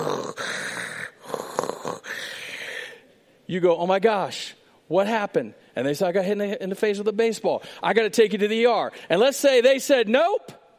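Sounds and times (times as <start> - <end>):
voice imitating heavy raspy respirator breathing: 0.0 - 3.1
speech: 3.5 - 10.5.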